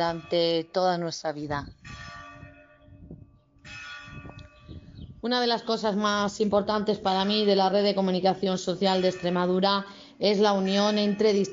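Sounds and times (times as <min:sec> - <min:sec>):
speech: 0:00.0 - 0:02.0, 0:05.2 - 0:11.5
parish church bells ringing in a continuous overlapping peal: 0:00.0 - 0:11.5.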